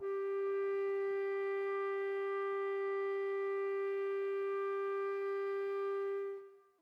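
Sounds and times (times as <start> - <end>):
clarinet: 0.0 - 6.7
flute: 0.0 - 6.7.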